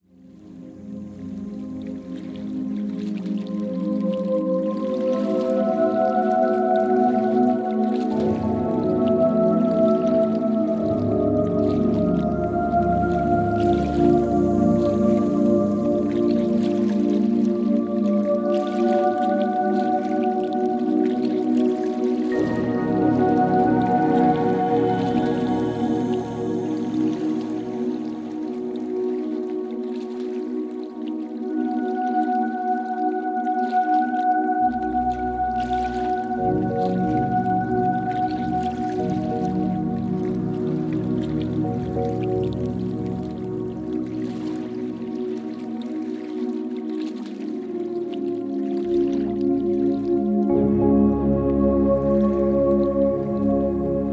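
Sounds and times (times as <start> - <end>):
nature sounds: 0.0 - 54.1.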